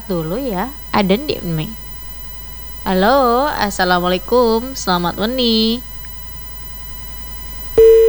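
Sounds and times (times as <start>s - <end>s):
low hiss: 0.0s - 8.0s
speech: 0.1s - 1.8s, 2.8s - 5.9s
telephone busy tone after a call is cut off: 7.8s - 8.0s.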